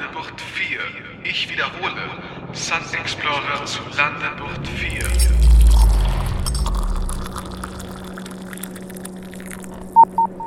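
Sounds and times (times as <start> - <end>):
speech: 0.2 - 5.6
low rumble: 4.2 - 9.9
incoming-message electronic alert beeps aboard a spaceship: 10.0 - 10.4.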